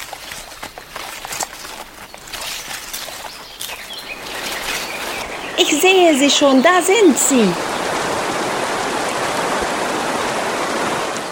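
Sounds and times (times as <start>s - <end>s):
rustling footsteps on a forest path: 0.0s - 6.5s
birds calling and chirping along a forest path: 0.0s - 9.6s
small waterfalls rushing water: 0.0s - 11.2s
speech: 5.6s - 7.7s.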